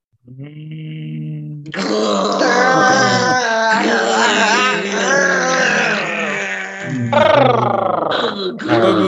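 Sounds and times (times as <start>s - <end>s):
speech: 0.2s - 1.0s, 1.7s - 4.5s
person growling like a dog: 0.3s - 9.0s
laughter: 2.4s - 6.2s, 8.6s - 9.0s.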